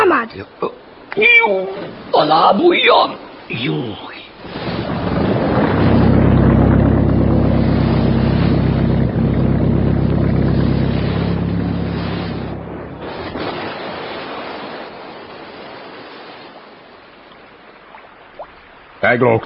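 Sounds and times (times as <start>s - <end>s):
speech: 0.2s - 4.7s, 19.1s - 19.4s
water splashing and rushing: 0.8s - 19.4s
motorboat engine droning: 4.4s - 15.2s.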